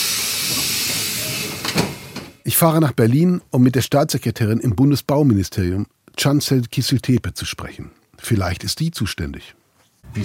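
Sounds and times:
train rail noise hiss pulling into Berlin Hauptbahnhof: 0.0s - 2.4s
speech: 2.4s - 10.2s.

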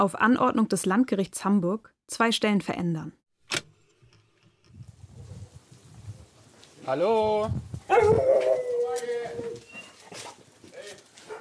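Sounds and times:
speech: 0.0s - 3.6s, 6.9s - 9.4s
dog barking and howling: 7.9s - 10.0s, 11.2s - 11.4s.

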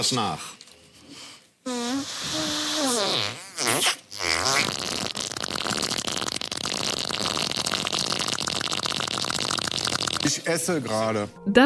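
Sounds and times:
speech: 0.0s - 0.6s, 1.6s - 4.0s, 10.4s - 11.6s
woman blowing a raspberry with her mouth mimicking a fart: 1.7s - 10.3s.

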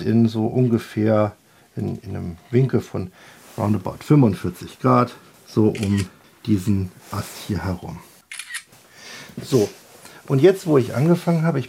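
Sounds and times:
speech: 0.0s - 8.1s, 9.4s - 11.6s
faint hiss: 0.0s - 11.6s
camera shutter clicks: 5.7s - 6.1s, 8.2s - 8.7s.

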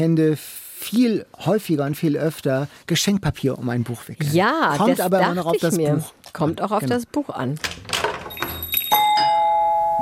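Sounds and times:
speech: 0.0s - 7.9s
doorbell ding-dong chime: 8.3s - 9.9s.

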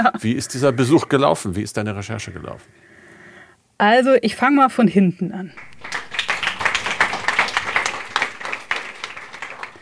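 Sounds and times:
speech: 0.0s - 2.9s, 3.8s - 6.0s
students applauding after a lecture: 5.6s - 9.8s.

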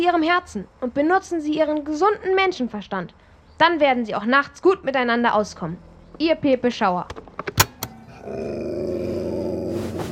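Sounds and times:
speech: 0.0s - 7.6s, 8.2s - 9.1s
dog on a bed growling: 7.9s - 10.0s.

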